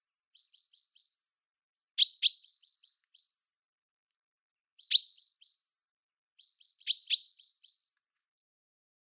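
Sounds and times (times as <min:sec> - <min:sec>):
common chaffinch Fringilla coelebs calls: 0:02.0 - 0:03.3, 0:04.8 - 0:05.6, 0:06.4 - 0:07.8.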